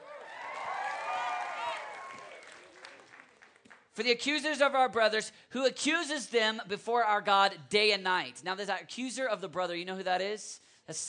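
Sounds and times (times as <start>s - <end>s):
crowd cheering: 0.0s - 3.7s
audience applause: 0.0s - 3.8s
speech: 4.0s - 11.0s.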